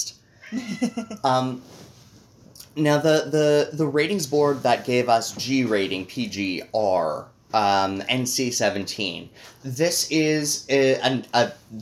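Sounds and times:
speech: 0:00.0 - 0:01.8, 0:02.8 - 0:11.8
cat chirping and meowing: 0:00.4 - 0:01.2.

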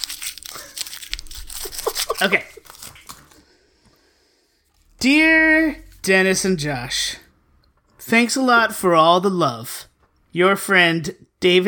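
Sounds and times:
crumpled paper letter being unfolded and opened: 0:00.0 - 0:03.6
speech: 0:02.2 - 0:02.6, 0:05.0 - 0:07.2, 0:08.1 - 0:11.6.

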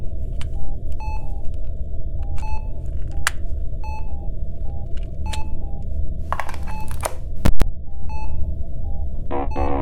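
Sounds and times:
low machine hum: 0:00.0 - 0:09.8
short high electronic beeps: 0:09.3 - 0:09.8.

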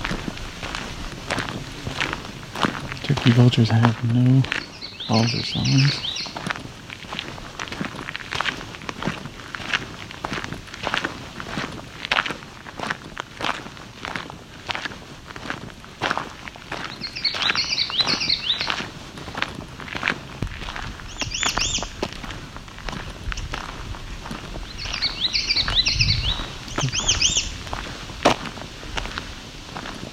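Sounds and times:
crunching footsteps: 0:00.0 - 0:30.1
speech: 0:03.1 - 0:06.2
warbler singing: 0:03.6 - 0:06.4, 0:16.9 - 0:18.9, 0:21.0 - 0:22.0, 0:24.6 - 0:27.6.

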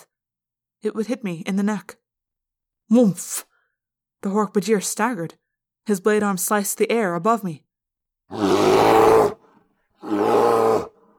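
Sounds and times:
speech: 0:00.8 - 0:02.0, 0:02.9 - 0:03.5, 0:04.2 - 0:07.7, 0:08.3 - 0:09.3
deep rough animal roars: 0:08.3 - 0:09.4, 0:10.0 - 0:11.0.

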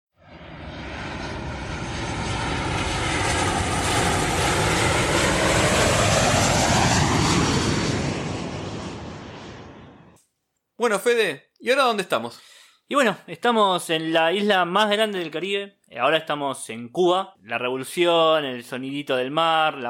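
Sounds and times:
airplane in flight engine drone: 0:00.2 - 0:10.2
speech: 0:10.8 - 0:19.8.

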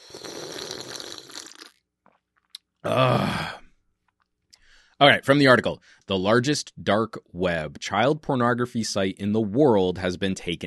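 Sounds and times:
loud breathy gulp or exhale: 0:00.0 - 0:01.8, 0:02.8 - 0:03.8
slurping sip of a drink of water: 0:00.0 - 0:01.8
speech: 0:02.8 - 0:03.5, 0:05.0 - 0:10.6.

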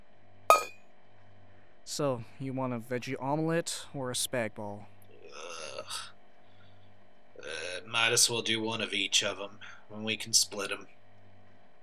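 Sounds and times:
glasses clinking in a toast: 0:00.5 - 0:00.7
speech: 0:01.9 - 0:06.0, 0:07.9 - 0:11.0.

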